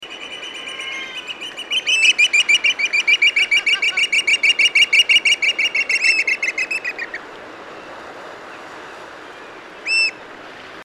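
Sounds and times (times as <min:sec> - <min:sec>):
blackish oystercatcher piping call: 0:00.0 - 0:07.2, 0:09.8 - 0:10.2.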